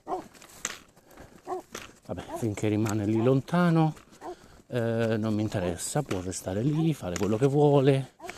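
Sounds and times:
large dog barking: 0.0s - 0.3s, 1.5s - 3.4s
light outdoor noise: 0.0s - 8.3s
speech: 2.4s - 4.0s, 4.7s - 8.2s.

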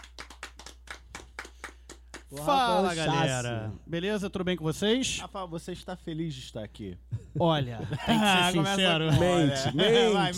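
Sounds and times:
small group applauding with hand clapping: 0.0s - 2.9s
speech: 2.3s - 10.3s
laughter: 7.1s - 10.3s.

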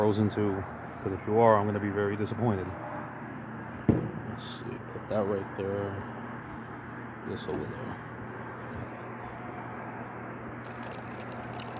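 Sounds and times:
speech: 0.0s - 2.9s, 4.4s - 6.1s, 7.2s - 8.1s
drink being poured into a glass: 10.6s - 11.7s.

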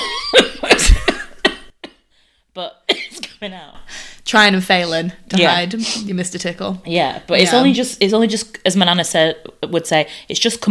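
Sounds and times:
person with a tickle in the throat coughing: 0.4s - 1.7s
speech: 2.6s - 2.8s, 3.4s - 10.6s.

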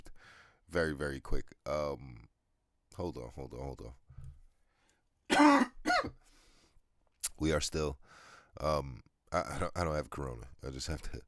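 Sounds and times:
speech: 0.7s - 2.3s, 3.0s - 4.0s, 7.4s - 11.2s
raspy phlegmy smoker's cough: 5.3s - 6.2s
throat clearing: 5.3s - 6.2s.

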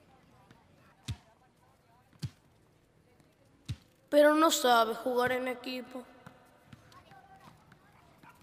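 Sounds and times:
ball bouncing during a soccer game: 0.4s - 1.3s, 2.1s - 2.5s, 3.2s - 4.0s, 6.2s - 8.4s
speech: 4.1s - 6.1s.

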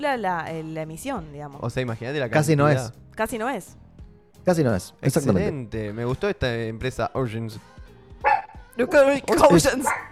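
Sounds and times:
speech: 0.0s - 3.8s, 4.4s - 7.8s, 8.8s - 10.1s
small dog barking excitedly: 8.2s - 8.7s, 9.8s - 10.1s.

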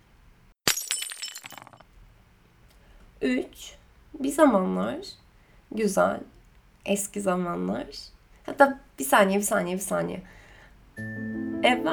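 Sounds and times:
glass shattering: 0.6s - 1.9s
falling glass shards tinkling: 0.7s - 1.8s
speech: 3.2s - 10.4s, 11.0s - 11.9s.

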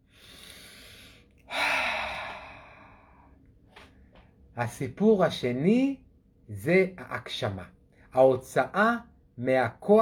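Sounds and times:
airy inhale: 0.0s - 3.4s
louder longer exhale: 0.1s - 3.4s
speech: 4.6s - 9.9s.

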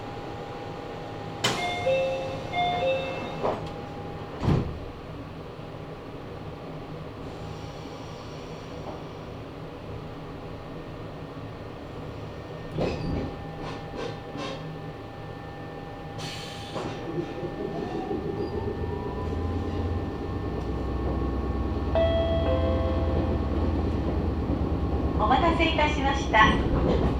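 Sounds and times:
local commuter train doors sliding shut: 1.4s - 5.2s, 12.2s - 14.8s, 16.2s - 27.1s
steady electronic chime tone: 22.0s - 23.6s.

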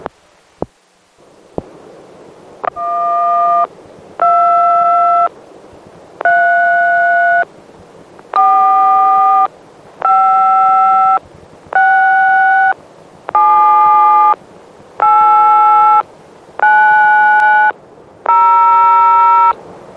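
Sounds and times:
faint hum: 0.0s - 19.9s
electronic telephone signaling tones on a tape recording: 2.6s - 5.3s, 6.2s - 7.5s, 8.3s - 11.2s, 11.8s - 14.4s, 15.0s - 19.6s.

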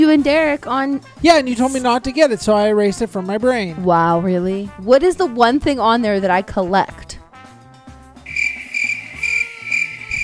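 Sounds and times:
speech: 0.1s - 7.2s
crickets chirping: 8.3s - 10.2s.

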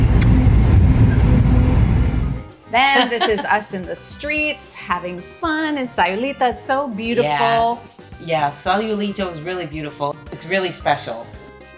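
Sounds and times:
bus engine rumble and road noise driving through town streets: 0.0s - 2.4s
speech: 2.8s - 11.7s
laughter: 2.9s - 3.6s.

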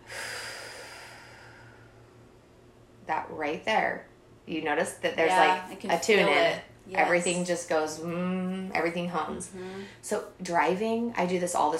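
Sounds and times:
slow deep breath during a mindfulness exercise: 0.0s - 2.5s, 9.5s - 10.0s
speech: 3.3s - 11.7s.

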